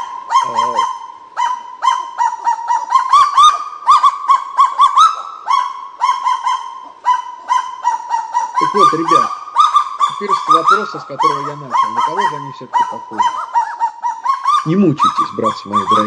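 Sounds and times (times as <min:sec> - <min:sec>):
kagu barking calls: 0:00.0 - 0:16.0
speech: 0:08.9 - 0:09.4, 0:10.2 - 0:13.6, 0:14.6 - 0:16.0.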